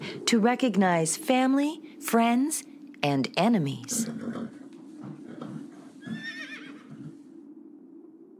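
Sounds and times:
steady low rumbling background: 0.0s - 8.3s
speech: 0.3s - 4.6s
horse neighing: 5.2s - 7.2s.

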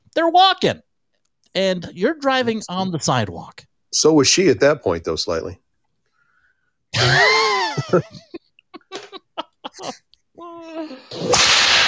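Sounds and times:
speech: 0.2s - 0.8s, 1.5s - 5.6s, 6.9s - 8.2s, 9.8s - 11.6s
laughter: 7.0s - 10.1s
whip crack sound effect: 11.2s - 11.8s.

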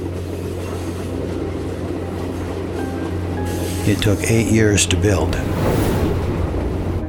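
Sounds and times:
constant droning hum: 0.0s - 5.1s
train rolling through a long tunnel drilled through a mountain: 0.0s - 7.0s
speech: 3.9s - 6.0s.

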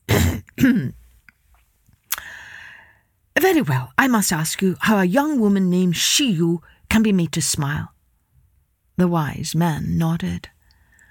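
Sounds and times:
person acting out throat clearing in a narrated story: 0.0s - 1.0s
speech: 0.6s - 1.0s, 3.4s - 8.0s, 9.0s - 10.5s.

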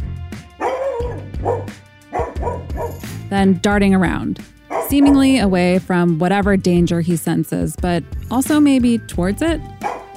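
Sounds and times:
dog barking loudly and sharply: 0.6s - 3.1s, 4.7s - 5.4s, 9.8s - 10.1s
speech: 3.3s - 9.9s.

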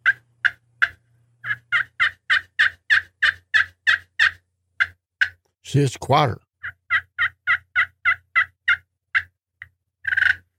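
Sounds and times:
turkey hand call yelps muffled by a flat hand: 0.0s - 5.4s, 6.6s - 9.3s, 10.0s - 10.5s
speech: 5.7s - 6.4s.

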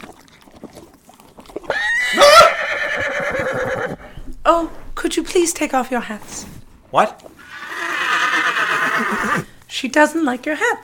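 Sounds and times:
horse whinnying in a stall: 1.6s - 4.2s, 7.4s - 9.5s
speech: 4.5s - 7.2s, 9.2s - 10.8s.

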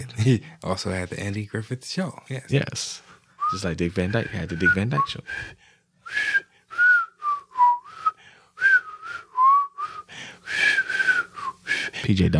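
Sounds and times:
speech: 0.1s - 6.4s, 12.0s - 12.3s
person whistling a TV show theme song: 3.4s - 11.8s.

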